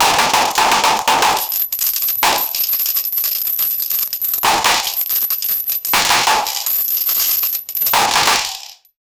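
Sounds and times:
loud chain swinging: 0:00.0 - 0:08.9.

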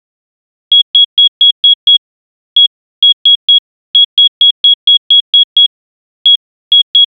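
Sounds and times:
telephone beep: 0:00.7 - 0:05.7, 0:06.3 - 0:07.1.

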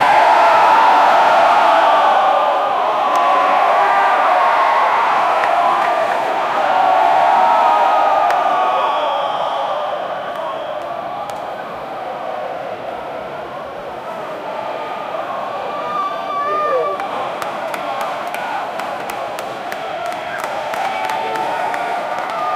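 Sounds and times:
crowd cheering at soccer in a stadium: 0:00.0 - 0:22.5.

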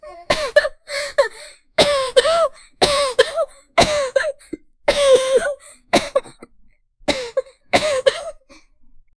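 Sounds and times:
young girl coughing: 0:00.2 - 0:06.5, 0:07.1 - 0:08.5.

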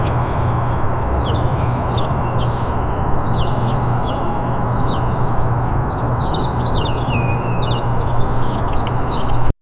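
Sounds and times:
outdoor morning ambience: 0:00.0 - 0:09.5.

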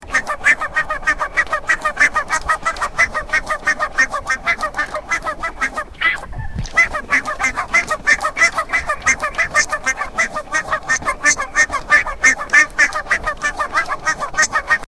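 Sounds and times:
duck: 0:00.0 - 0:14.9.

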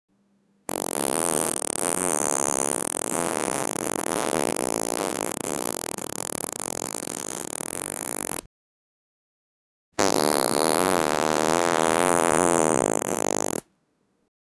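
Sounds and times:
prank farting sounds: 0:00.7 - 0:08.5, 0:10.0 - 0:13.7.

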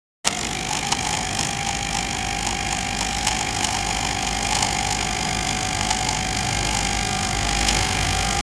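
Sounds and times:
arcade claw machine: 0:00.2 - 0:08.4.

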